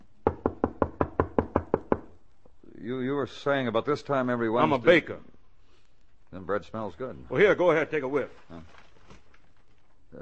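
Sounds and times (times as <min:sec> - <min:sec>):
firm knocks on an apartment door: 0:00.2 - 0:02.2
speech: 0:02.8 - 0:05.3, 0:06.3 - 0:08.8.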